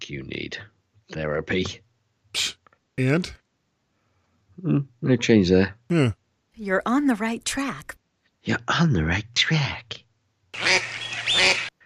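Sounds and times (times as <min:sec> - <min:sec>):
speech: 0:00.1 - 0:03.4, 0:04.6 - 0:10.0
duck quacking: 0:10.6 - 0:11.7.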